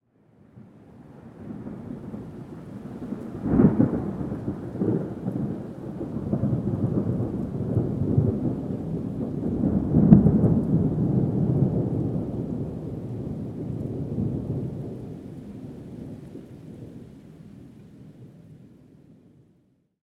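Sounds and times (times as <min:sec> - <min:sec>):
distant thunder: 0:01.3 - 0:18.3.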